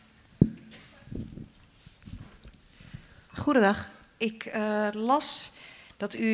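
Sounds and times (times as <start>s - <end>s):
footsteps walking across a hall: 0.4s - 3.2s
speech: 3.4s - 6.3s.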